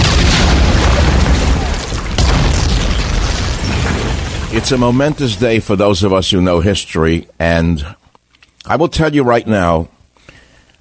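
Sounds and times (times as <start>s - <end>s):
shells from Allied warships exploding on the European front: 0.0s - 6.0s
speech: 4.6s - 8.0s, 8.6s - 9.9s.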